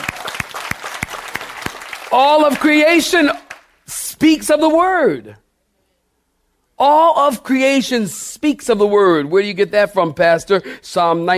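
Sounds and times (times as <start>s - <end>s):
audience clapping hands in a steady quick rhythm: 0.0s - 3.8s
speech: 2.1s - 3.4s, 4.2s - 5.4s, 6.8s - 11.3s.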